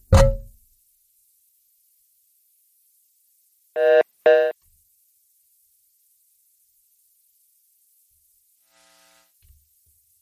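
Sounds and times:
dull thump: 0.0 - 0.6.

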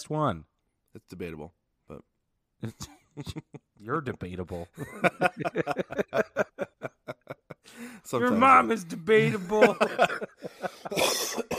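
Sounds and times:
speech: 0.0 - 11.5
laughter: 2.6 - 3.7, 4.6 - 11.3
person coughing: 10.7 - 11.5.

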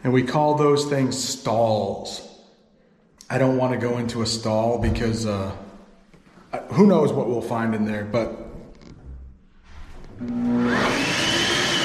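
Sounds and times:
speech: 0.0 - 2.3, 3.3 - 5.6, 6.5 - 8.4, 10.2 - 10.8
hand dryer blowing in a restroom: 9.7 - 11.8.

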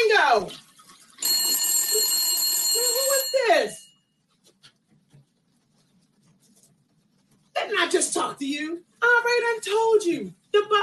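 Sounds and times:
speech: 0.0 - 0.6, 2.8 - 3.8, 7.6 - 10.8
telephone bell ringing: 1.2 - 4.1.

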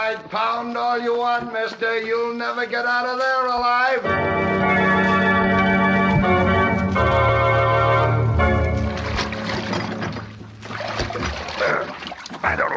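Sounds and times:
speech: 0.1 - 5.3
oars splashing in water rowing a boat: 5.8 - 12.7.

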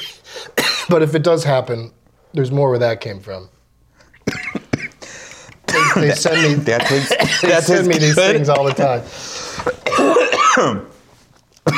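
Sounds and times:
person coughing after a hit from a pipe: 0.6 - 1.0, 4.2 - 9.0, 9.6 - 10.9
speech: 0.9 - 3.6, 6.0 - 10.9.

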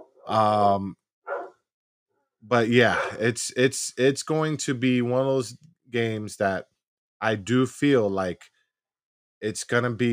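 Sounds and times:
speech: 0.3 - 1.0, 2.4 - 8.5, 9.4 - 10.1
pet dog barking: 1.3 - 1.6, 2.8 - 3.3.

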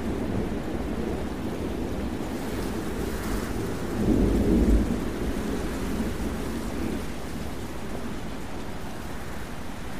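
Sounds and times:
rain and wind in a thunderstorm: 0.0 - 9.9.

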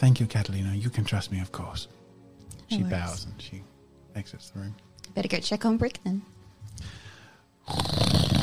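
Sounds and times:
speech: 0.0 - 2.0, 2.7 - 7.0, 7.7 - 8.0
loud rattling snoring: 7.6 - 8.4.

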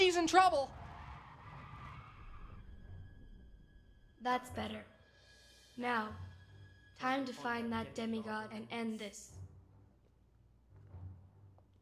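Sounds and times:
car tires screeching in a sharp turn: 0.0 - 3.9
speech: 0.1 - 0.8, 4.2 - 5.0, 5.8 - 6.3, 7.0 - 9.4.

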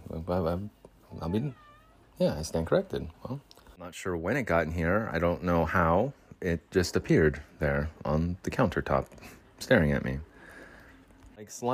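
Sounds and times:
speech: 0.3 - 1.6, 2.2 - 10.3, 11.4 - 11.7
cat meowing in a makeshift vocal booth: 1.1 - 2.2.

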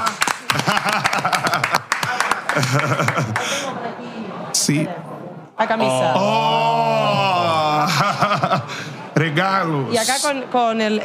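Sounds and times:
small group clapping hands: 0.0 - 3.6
speech: 0.5 - 1.5, 2.6 - 7.3, 7.9 - 11.0
laughter: 0.5 - 3.5, 7.8 - 8.8.

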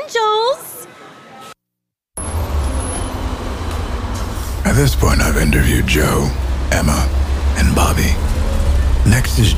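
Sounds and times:
bus driving along a road: 2.2 - 9.5
quiet road ambience: 2.2 - 9.5
speech: 4.8 - 8.3, 9.0 - 9.5.

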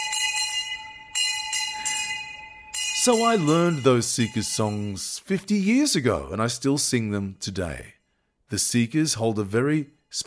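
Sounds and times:
primary school bell ringing: 0.0 - 6.0
speech: 3.0 - 10.2.

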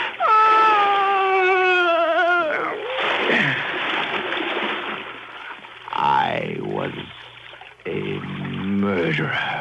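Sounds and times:
woman moaning: 0.2 - 3.6
churning, sloshing water: 2.5 - 9.4
heavy splash into water: 2.8 - 5.8.

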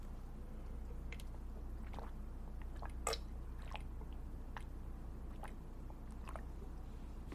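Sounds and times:
low hum: 0.0 - 7.3
person chugging water: 1.1 - 4.7, 5.3 - 6.7.

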